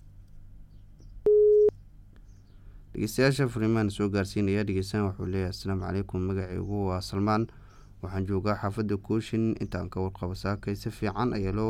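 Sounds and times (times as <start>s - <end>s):
busy-signal tone on a telephone line that has just been cut off: 1.3s - 1.7s
speech: 3.0s - 11.6s.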